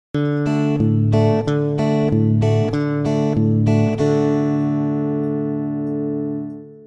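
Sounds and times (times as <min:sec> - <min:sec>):
country Tele electric guitar D chord: 0:00.2 - 0:06.8.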